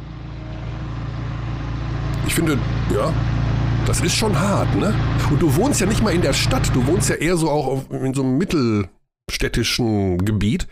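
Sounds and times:
construction heavy machinery engine drone recorded on a phone: 0:00.0 - 0:07.3
speech: 0:02.3 - 0:10.6.

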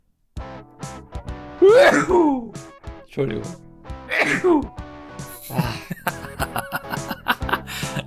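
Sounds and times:
person sneezing: 0:01.6 - 0:02.5, 0:04.1 - 0:04.7
speech: 0:01.6 - 0:02.6, 0:03.2 - 0:03.6, 0:04.2 - 0:04.8
people laughing: 0:05.3 - 0:08.0.

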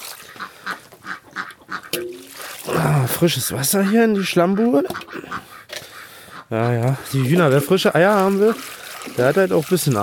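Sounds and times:
drake quacking on a farmyard: 0:00.2 - 0:02.6, 0:03.2 - 0:07.8
speech: 0:02.0 - 0:05.5, 0:06.5 - 0:10.0.

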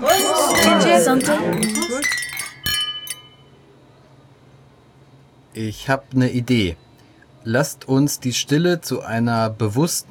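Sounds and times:
murmur of cheerful voices: 0:00.0 - 0:02.2
glasses clinking together in a toast: 0:00.0 - 0:03.6
speech: 0:01.0 - 0:02.2, 0:05.6 - 0:06.8, 0:07.4 - 0:10.0.

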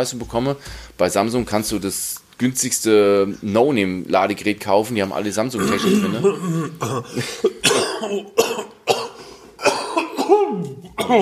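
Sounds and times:
speech: 0:00.0 - 0:08.7, 0:10.5 - 0:11.2
person coughing: 0:05.6 - 0:11.2.

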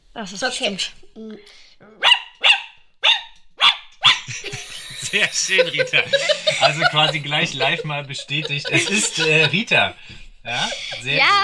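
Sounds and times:
speech: 0:00.2 - 0:02.1, 0:04.3 - 0:04.5, 0:05.1 - 0:11.4
dog barking: 0:02.0 - 0:04.5
laughter: 0:04.2 - 0:11.4.

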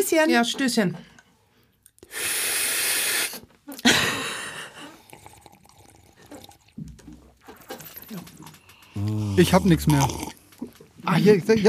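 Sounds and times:
speech: 0:00.0 - 0:01.2, 0:02.1 - 0:02.5, 0:09.0 - 0:10.4, 0:11.1 - 0:11.6
wet slurping of coffee: 0:02.0 - 0:03.5, 0:04.9 - 0:06.8, 0:08.8 - 0:10.8.

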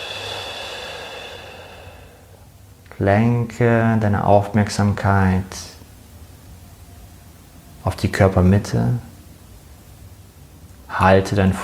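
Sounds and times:
long slow deep exhale in a guided breathing exercise: 0:00.0 - 0:02.5
speech: 0:03.0 - 0:05.8, 0:07.8 - 0:09.1, 0:11.0 - 0:11.6.

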